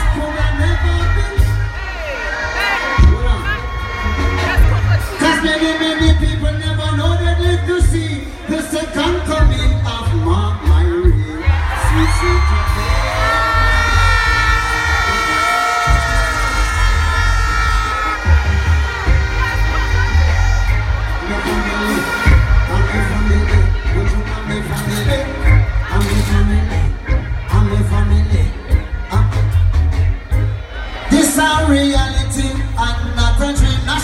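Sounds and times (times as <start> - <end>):
booming live music: 0.0 - 34.0
concert crowd screaming and cheering: 0.0 - 34.0.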